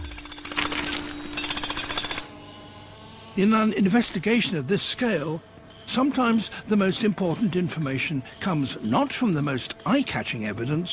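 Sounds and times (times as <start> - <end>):
pneumatic drill hammering: 0.0 - 2.4
speech: 3.4 - 10.9.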